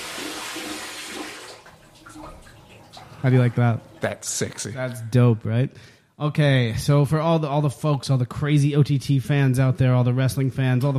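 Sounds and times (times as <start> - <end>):
running water like a shower spraying: 0.0 - 4.9
speech: 3.2 - 10.9.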